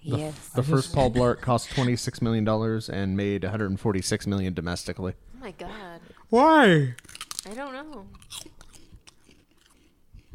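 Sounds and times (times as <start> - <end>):
speech: 0.1 - 8.5
someone chewing crunchy corn snack doodles: 6.9 - 10.3.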